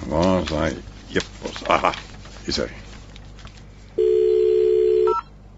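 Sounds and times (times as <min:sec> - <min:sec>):
speech: 0:00.1 - 0:02.8
telephone dial tone: 0:04.0 - 0:05.2.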